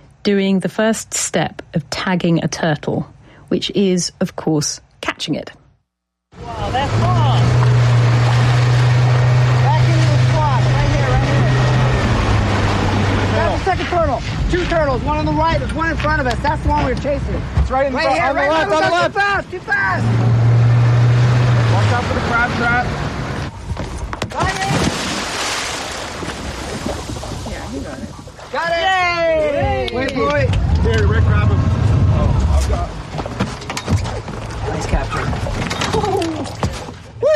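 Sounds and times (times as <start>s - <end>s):
wind: 0.0s - 37.3s
speech: 0.2s - 5.6s, 13.9s - 20.6s, 21.8s - 23.0s, 27.8s - 31.6s, 37.2s - 37.3s
boat engine droning: 6.3s - 23.6s, 30.0s - 33.4s
water: 6.3s - 37.3s
heavy splash of scientist jumping from boat into water: 6.6s - 13.7s, 24.4s - 28.6s.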